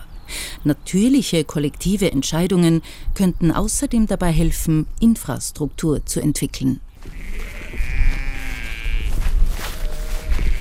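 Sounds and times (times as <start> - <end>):
speech: 0.6 - 7.5
sheep bleating: 7.0 - 10.5.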